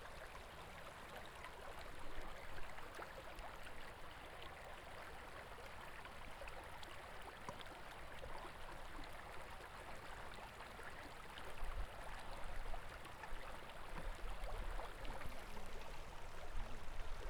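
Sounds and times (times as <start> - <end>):
water: 0.0 - 17.2.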